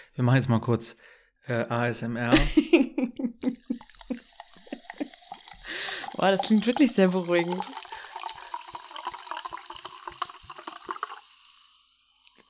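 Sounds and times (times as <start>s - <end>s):
speech: 0.0s - 2.8s, 6.2s - 7.8s
laughter: 2.3s - 5.2s
sparkling water fizzing after opening bottle: 3.4s - 12.4s.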